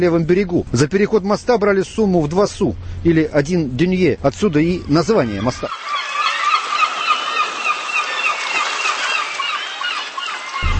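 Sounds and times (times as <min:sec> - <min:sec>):
speech: 0:00.0 - 0:06.0
large flock of gulls calling over a river in Paris: 0:04.5 - 0:10.7
faint wash of river water: 0:05.6 - 0:10.7.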